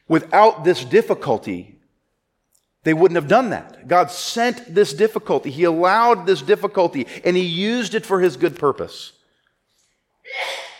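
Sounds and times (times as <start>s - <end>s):
speech: 0.1s - 1.7s, 2.8s - 9.2s
sneeze: 10.3s - 10.7s.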